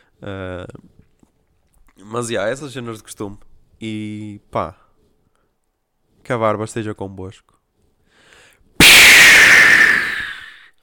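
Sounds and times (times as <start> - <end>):
speech: 0.2 - 1.0, 2.0 - 4.8, 6.2 - 7.6
smoke bomb going off with a pop and hiss: 8.8 - 10.6.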